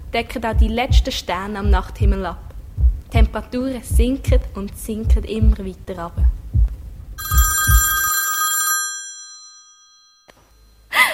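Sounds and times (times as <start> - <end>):
speech: 0.1 - 2.4, 3.1 - 6.4
payphone metallic bell ringing in a phone booth: 7.2 - 10.8.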